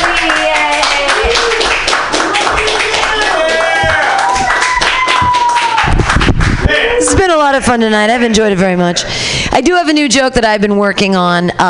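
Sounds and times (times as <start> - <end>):
crowd clapping: 0.0 - 7.1
excited voices and whoops: 0.3 - 1.8, 2.5 - 7.6
speech: 7.5 - 11.6.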